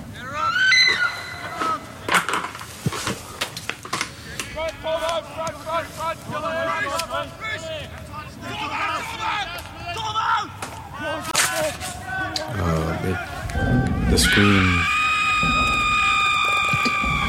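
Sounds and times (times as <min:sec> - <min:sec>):
loud high-pitched human scream: 0:00.3 - 0:01.6, 0:14.0 - 0:17.2
noisy jumble of voices: 0:04.1 - 0:17.2.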